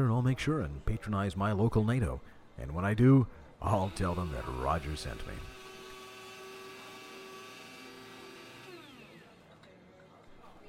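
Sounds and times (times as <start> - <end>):
speech: 0.0 - 5.6
motorized whir of coffee being made at a diner: 3.7 - 9.5.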